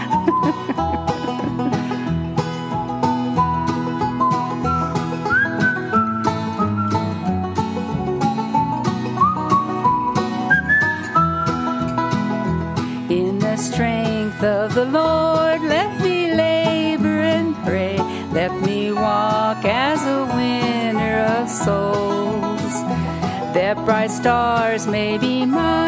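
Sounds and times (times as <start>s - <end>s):
laughter: 0.0s - 2.1s
rhythmic instrumental accompaniment: 0.0s - 25.8s
musician whistling a bright melody: 3.0s - 7.4s, 8.6s - 11.9s
speech: 23.6s - 25.8s.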